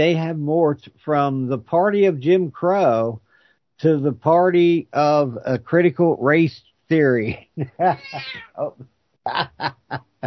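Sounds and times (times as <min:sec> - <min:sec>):
speech: 0:00.0 - 0:03.2, 0:03.8 - 0:10.2
cat meowing: 0:07.9 - 0:08.6.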